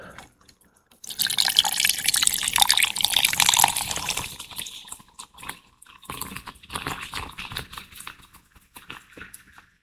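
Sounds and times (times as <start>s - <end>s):
cola pouring into a glass over rum and squeezed lime: 1.0s - 7.6s.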